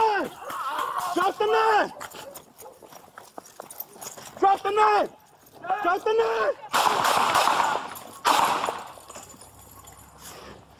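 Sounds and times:
speech: 0:01.4 - 0:02.0, 0:04.5 - 0:07.5
gunshots fired by police during a knife confrontation in Dallas, Texas: 0:06.7 - 0:09.0.

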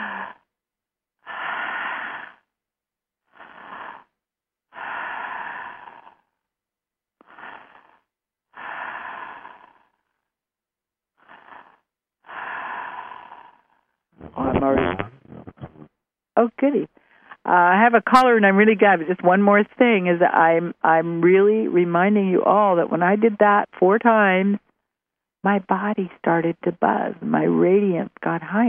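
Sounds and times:
deep breathing in through the open mouth: 0:01.2 - 0:02.5, 0:03.3 - 0:06.4, 0:07.2 - 0:10.2, 0:11.2 - 0:13.8
speech: 0:16.4 - 0:24.6, 0:25.4 - 0:28.6.

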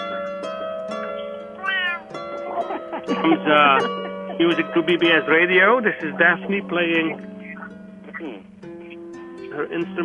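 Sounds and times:
steady tonal hum: 0:00.0 - 0:10.0
cat meowing: 0:01.6 - 0:02.2
laughter: 0:02.3 - 0:07.7
speech: 0:03.0 - 0:07.3, 0:09.6 - 0:10.0.

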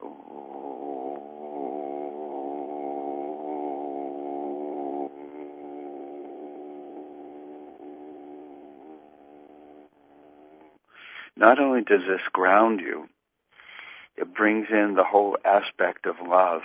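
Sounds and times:
single voice humming one steady low note: 0:00.0 - 0:09.8
speech: 0:11.4 - 0:13.1, 0:14.4 - 0:16.6.

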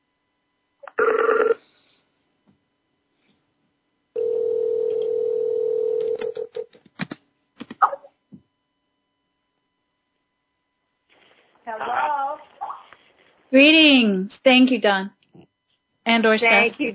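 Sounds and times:
steady telephone tone while a phone call is being connected: 0:00.2 - 0:02.0, 0:02.7 - 0:06.7, 0:08.2 - 0:14.2
telephone line noise: 0:10.8 - 0:16.9
speech: 0:13.5 - 0:15.2, 0:16.1 - 0:16.9.

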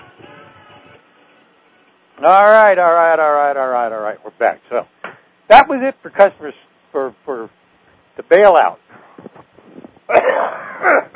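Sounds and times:
speech: 0:02.2 - 0:04.9, 0:05.5 - 0:07.5, 0:08.3 - 0:08.8
person with a dry throat coughing: 0:10.1 - 0:11.1.

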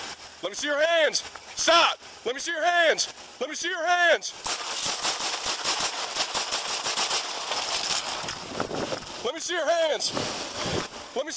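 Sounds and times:
speech: 0:00.4 - 0:05.0, 0:09.3 - 0:11.3
rapid gunfire during a police confrontation: 0:04.4 - 0:08.3.

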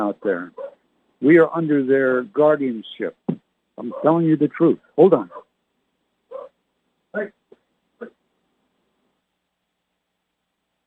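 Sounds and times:
speech: 0:00.1 - 0:00.6, 0:01.2 - 0:03.2, 0:03.8 - 0:05.4, 0:07.1 - 0:07.4
dog barking: 0:00.5 - 0:00.8, 0:03.8 - 0:04.2, 0:05.2 - 0:05.5, 0:06.3 - 0:06.6.

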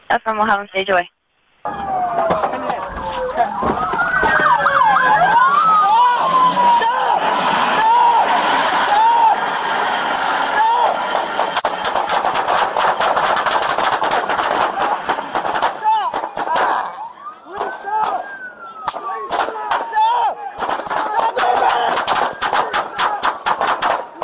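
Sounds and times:
speech: 0:00.1 - 0:01.9
siren wailing up and down: 0:01.6 - 0:24.2
rapid police gunfire: 0:10.7 - 0:16.8, 0:18.9 - 0:24.2.

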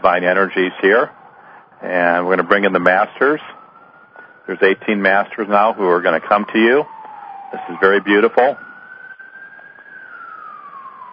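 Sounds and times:
speech: 0:00.0 - 0:01.2, 0:01.8 - 0:03.6, 0:04.5 - 0:08.6
emergency vehicle siren wailing on a New York street: 0:00.0 - 0:11.1.

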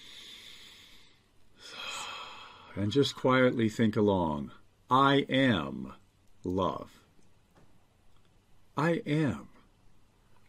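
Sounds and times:
deep conscious breathing during a guided meditation: 0:00.0 - 0:02.9
speech: 0:02.8 - 0:07.0, 0:08.8 - 0:09.5.

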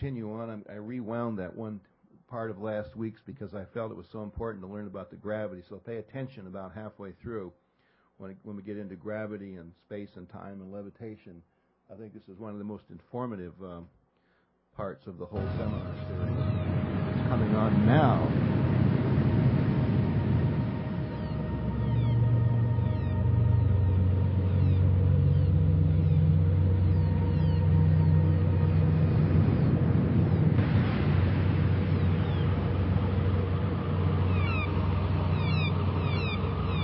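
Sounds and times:
speech: 0:00.0 - 0:07.6, 0:08.2 - 0:14.0, 0:14.8 - 0:16.3, 0:17.3 - 0:18.6
humming sci-fi spaceship drone with warbling tones: 0:15.4 - 0:36.8
faint bird chirps: 0:21.0 - 0:28.8, 0:32.0 - 0:32.6, 0:34.2 - 0:36.8.

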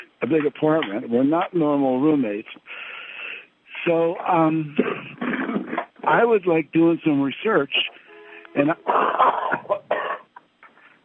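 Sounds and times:
speech: 0:00.2 - 0:02.9, 0:03.8 - 0:05.5, 0:06.1 - 0:07.9, 0:08.5 - 0:09.4
person coughing: 0:04.8 - 0:05.9, 0:08.8 - 0:10.3.

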